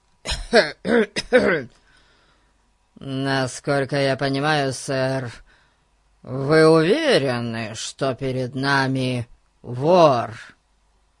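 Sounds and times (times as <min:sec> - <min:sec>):
man clearing his throat: 0:00.3 - 0:01.8
speech: 0:00.5 - 0:01.8, 0:03.0 - 0:05.4, 0:06.2 - 0:10.6.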